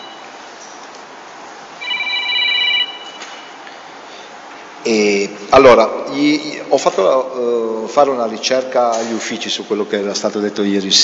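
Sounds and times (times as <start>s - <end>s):
mobile phone ringtone chirping with a bright electronic tone: 1.8s - 3.2s
speech: 4.8s - 11.0s.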